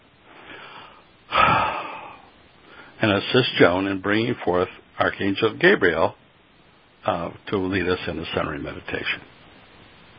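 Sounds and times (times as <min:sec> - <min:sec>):
group taking a deep breath during a centering meditation: 0:00.3 - 0:03.0
speech: 0:03.0 - 0:06.2, 0:07.0 - 0:09.4.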